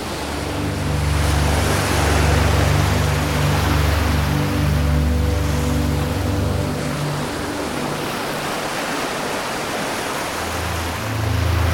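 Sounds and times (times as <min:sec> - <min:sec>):
calming ambient music with low sustained tones: 0:00.0 - 0:11.7
ocean waves: 0:00.0 - 0:11.7.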